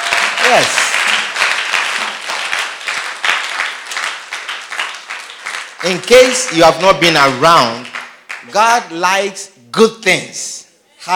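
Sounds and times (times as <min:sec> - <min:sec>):
church service audience clapping: 0:00.0 - 0:08.9
speech: 0:00.5 - 0:00.9, 0:05.8 - 0:11.1.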